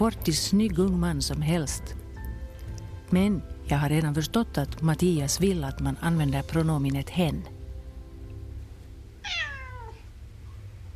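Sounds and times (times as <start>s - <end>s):
speech: 0.0s - 2.0s, 3.1s - 7.5s
steady low hum: 0.0s - 10.9s
cat meowing with a falling pitch: 9.2s - 10.1s.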